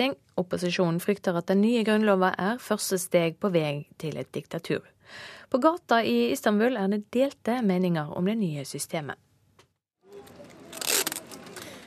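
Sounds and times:
speech: 0.0s - 9.2s
wide adhesive tape pulled off a roll by a street vendor in the rain: 10.4s - 11.8s.

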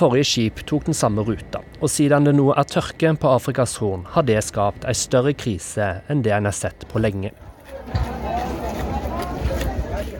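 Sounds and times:
speech: 0.0s - 8.1s
outdoor market crowd chatter in Somalia: 7.2s - 10.1s.

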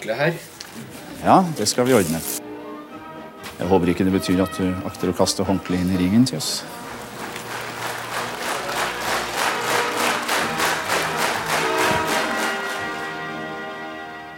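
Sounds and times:
speech: 0.0s - 2.4s, 3.6s - 6.8s
studio audience applause: 6.6s - 13.8s.

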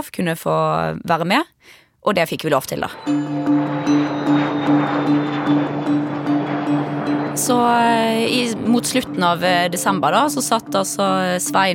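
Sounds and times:
speech: 0.0s - 4.0s, 7.4s - 11.7s
airplane engine drone on a flight to Alicante Spain: 2.9s - 11.7s.

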